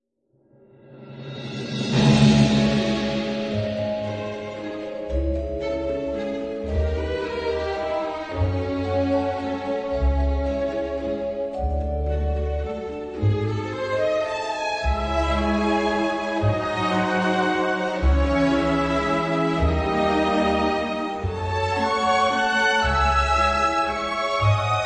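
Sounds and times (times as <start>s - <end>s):
waltz music without choir: 1.9s - 24.8s.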